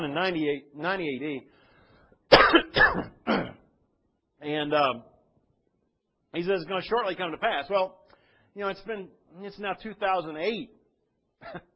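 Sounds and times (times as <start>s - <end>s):
speech: 0.0s - 1.6s, 2.3s - 3.6s, 4.4s - 5.1s, 6.3s - 8.0s, 8.6s - 10.8s, 11.4s - 11.7s
man clearing throat: 2.3s - 3.7s, 11.4s - 11.7s.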